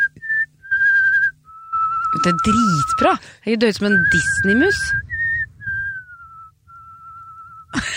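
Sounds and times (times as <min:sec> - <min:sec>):
person whistling a gliding tune with vibrato: 0:00.0 - 0:03.2, 0:03.9 - 0:07.8
low rumble: 0:00.0 - 0:07.9
speech: 0:02.2 - 0:05.1
sudden noisy burst: 0:04.0 - 0:07.7.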